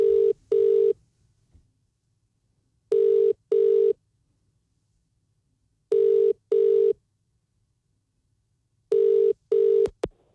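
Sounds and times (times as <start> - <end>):
double-pulse ringback tones on an outgoing phone call: 0.0 - 1.0, 2.9 - 3.9, 5.9 - 7.0, 8.9 - 10.0.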